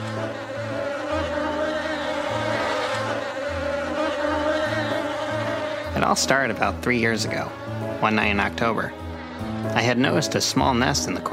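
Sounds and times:
swarm of bees in a house attic buzzing: 0:00.0 - 0:11.3
speech: 0:06.0 - 0:11.3.

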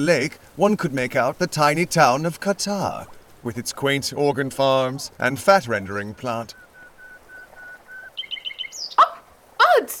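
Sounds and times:
speech: 0:00.0 - 0:06.6
recorded birdsong with whistled notes chirps and harsh calls over a speaker: 0:05.1 - 0:09.2.

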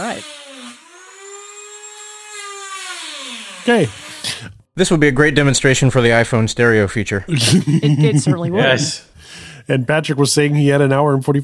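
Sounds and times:
speech: 0:00.0 - 0:00.5, 0:03.6 - 0:11.4
power drill or saw whining during a fiber installation: 0:00.0 - 0:04.4
laughter: 0:07.1 - 0:09.1.

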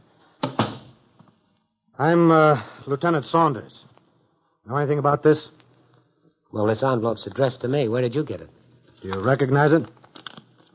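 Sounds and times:
door thuds: 0:00.4 - 0:01.0
speech: 0:02.0 - 0:03.9, 0:04.7 - 0:05.6, 0:06.5 - 0:10.0.

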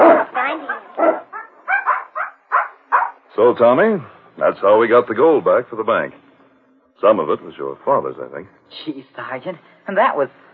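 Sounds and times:
puppy barking and yipping: 0:00.0 - 0:03.2
speech: 0:03.4 - 0:06.2, 0:07.0 - 0:10.5.

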